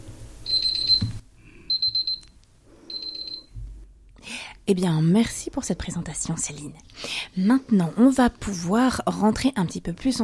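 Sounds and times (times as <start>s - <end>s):
high-pitched alarm signal marking the end of a timed presentation: 0.5s - 1.1s, 1.7s - 2.2s, 2.9s - 3.5s
speech: 4.7s - 10.2s.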